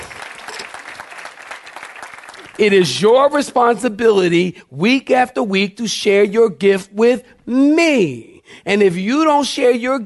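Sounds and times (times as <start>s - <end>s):
audience clapping: 0.0s - 3.0s
speech: 2.6s - 10.0s.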